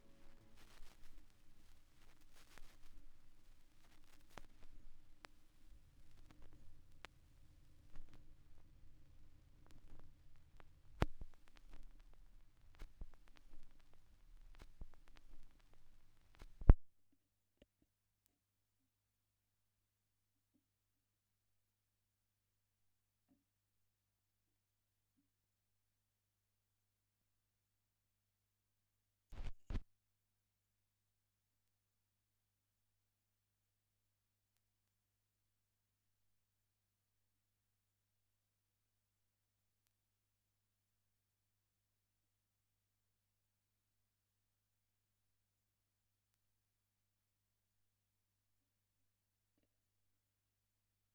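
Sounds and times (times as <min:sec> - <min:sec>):
vinyl record crackle: 0:00.0 - 0:16.8, 0:29.4 - 0:29.8.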